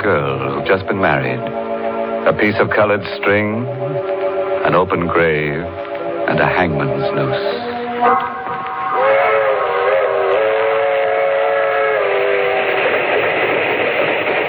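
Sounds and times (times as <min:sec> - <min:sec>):
speech: 0:00.0 - 0:01.6, 0:02.2 - 0:08.4
passenger train rumbling along the rails: 0:00.0 - 0:14.4
passenger train whistle in long harmonic blasts: 0:07.4 - 0:14.4.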